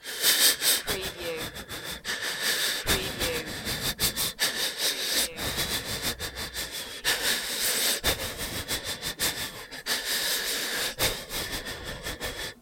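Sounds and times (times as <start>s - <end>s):
scared panicky breathing: 0.0s - 12.6s.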